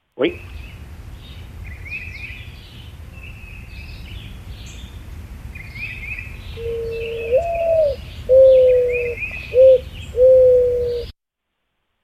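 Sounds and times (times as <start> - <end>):
small birds chirping: 0.1 - 11.1
speech: 0.2 - 0.6
mourning dove cooing: 6.6 - 11.1.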